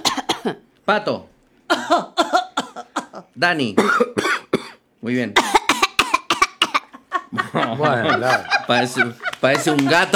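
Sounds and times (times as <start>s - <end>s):
person coughing on purpose during a classroom exercise: 0.0s - 0.6s, 1.7s - 4.8s, 5.4s - 6.9s
speech: 0.4s - 2.3s, 3.4s - 4.3s, 5.0s - 5.6s, 7.3s - 10.1s
laughter: 6.8s - 10.1s.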